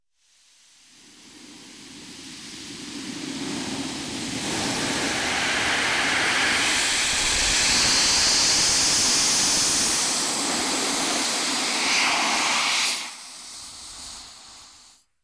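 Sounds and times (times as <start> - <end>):
air hiss: 0.2 - 15.1
air whoosh: 3.5 - 15.0.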